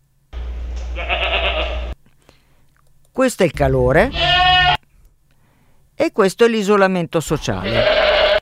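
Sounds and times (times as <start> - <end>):
goat bleating while awaiting food: 0.9 - 2.0, 4.1 - 4.8, 7.4 - 8.3
speech: 1.0 - 1.2, 3.2 - 4.3, 6.2 - 8.0.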